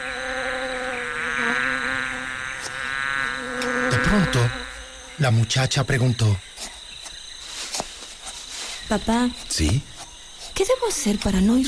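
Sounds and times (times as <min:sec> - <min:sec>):
bees buzzing gathering nectar from flowers in a garden: 0:00.0 - 0:05.6
speech: 0:04.1 - 0:04.6, 0:05.2 - 0:06.7, 0:08.9 - 0:09.9, 0:10.6 - 0:11.6.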